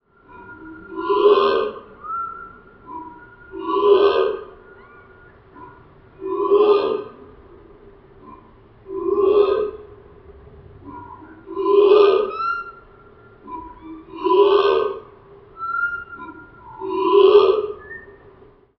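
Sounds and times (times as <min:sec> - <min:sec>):
long slow bird song: 0:00.0 - 0:06.6, 0:10.9 - 0:18.4.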